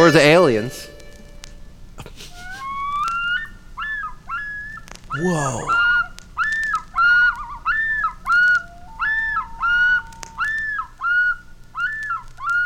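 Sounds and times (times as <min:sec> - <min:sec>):
speech: 0:00.1 - 0:01.0, 0:05.2 - 0:05.9
harmonica on a lake mimicking a seagull's cry with bent notes: 0:02.1 - 0:12.6.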